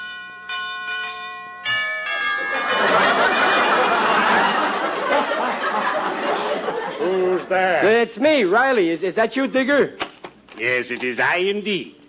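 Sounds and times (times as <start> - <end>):
house doorbell chiming: 0.0 - 4.7
crowd laughter: 2.2 - 7.6
speech: 7.5 - 10.0, 10.6 - 12.0.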